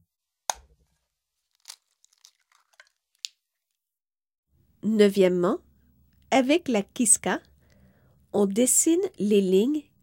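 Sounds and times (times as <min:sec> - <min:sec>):
paper towel crinkling as it dries a freshly dyed egg: 0:00.8 - 0:03.3
speech: 0:04.8 - 0:05.6, 0:06.3 - 0:07.5, 0:08.3 - 0:10.0.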